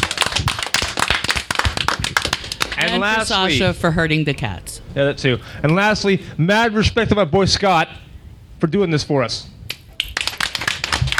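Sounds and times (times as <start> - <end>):
audience applause at a panel event: 0.0 - 4.1, 9.8 - 11.1
speech: 2.9 - 9.5.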